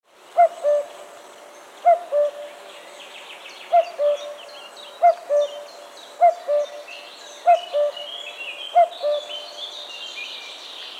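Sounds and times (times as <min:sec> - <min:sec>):
common cuckoo calling its two-note falling cu-coo: 0:00.4 - 0:01.0, 0:01.8 - 0:02.5, 0:03.7 - 0:04.4, 0:05.0 - 0:09.6.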